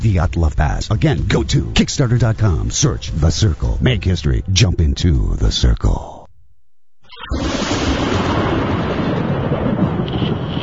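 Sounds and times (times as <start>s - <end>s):
speech: 0.0s - 6.1s
thunder rumbling: 7.3s - 10.6s.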